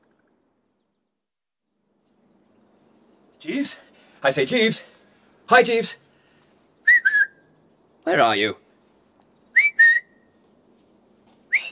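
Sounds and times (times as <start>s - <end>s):
speech: 3.4s - 6.0s, 8.0s - 8.6s
person whistling short bright notes: 6.9s - 7.4s, 9.6s - 10.2s, 11.5s - 11.7s.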